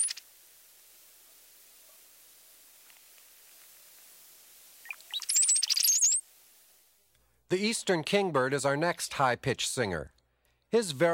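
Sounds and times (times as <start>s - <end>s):
brown-headed cowbird sputtering chatter: 0.0s - 0.2s, 4.8s - 6.2s
speech: 7.5s - 11.1s.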